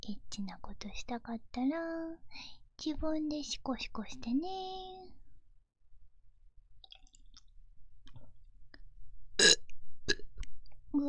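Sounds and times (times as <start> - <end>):
speech: 0.1 - 5.1
person burping: 9.4 - 10.3.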